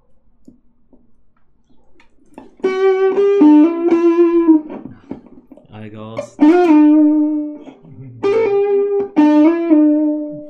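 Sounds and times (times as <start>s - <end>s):
buzzy notes played through a distortion effect: 2.4s - 10.4s.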